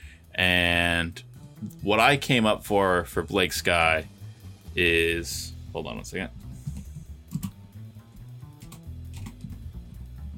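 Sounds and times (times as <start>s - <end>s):
speech: 0.4s - 4.1s, 4.8s - 6.4s
rapid typing on a computer keyboard: 7.3s - 7.6s, 8.6s - 9.4s.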